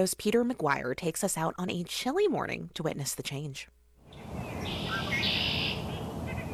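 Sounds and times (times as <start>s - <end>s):
speech: 0.0s - 5.3s
steady outdoor hiss: 0.0s - 6.5s
male red-winged blackbirds trilling and calling in woods: 4.1s - 6.5s.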